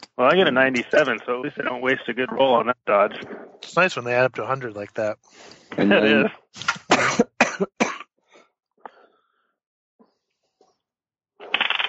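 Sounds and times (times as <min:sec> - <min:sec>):
speech: 0:00.2 - 0:06.8
person coughing: 0:05.8 - 0:08.1.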